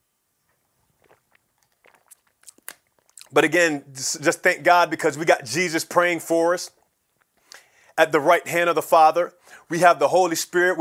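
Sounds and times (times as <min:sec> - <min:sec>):
swallowing sounds: 0:00.5 - 0:03.6, 0:06.7 - 0:07.7
sipping a drink: 0:00.5 - 0:04.0, 0:06.7 - 0:07.9
speech: 0:03.3 - 0:06.8, 0:08.0 - 0:10.7.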